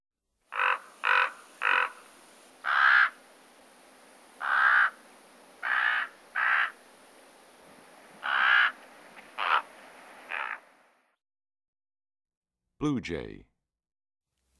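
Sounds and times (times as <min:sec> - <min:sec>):
common raven croaking: 0:00.5 - 0:03.2, 0:04.3 - 0:06.8, 0:08.2 - 0:09.7, 0:10.3 - 0:10.8
speech: 0:12.8 - 0:13.5.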